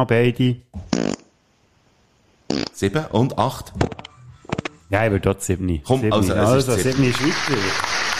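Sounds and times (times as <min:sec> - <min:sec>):
speech: 0:00.0 - 0:00.7, 0:02.8 - 0:03.9, 0:04.9 - 0:08.0
buzzy sputtering fart: 0:00.8 - 0:01.4, 0:02.5 - 0:02.8.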